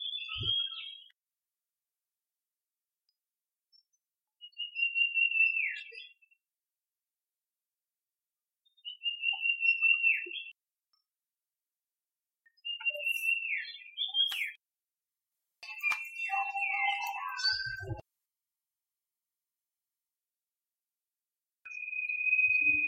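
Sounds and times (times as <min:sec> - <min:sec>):
iora song type C: 0:00.0 - 0:01.2, 0:04.4 - 0:06.2, 0:08.8 - 0:10.6, 0:12.6 - 0:14.6, 0:15.6 - 0:18.0, 0:21.7 - 0:22.8.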